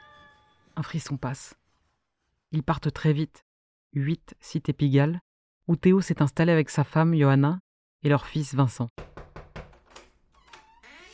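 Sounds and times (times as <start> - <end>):
soft high-pitched squeak: 0.0 - 2.3, 10.4 - 11.1
speech: 0.8 - 1.6, 2.5 - 9.1
knocking on an apartment door: 9.0 - 9.9
apartment door creaking open: 9.2 - 11.1.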